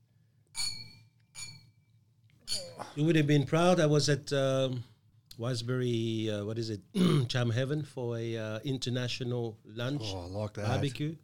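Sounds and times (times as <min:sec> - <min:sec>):
glasses clinking in a toast among mates at a table: 0:00.6 - 0:01.8
speech: 0:02.6 - 0:11.2.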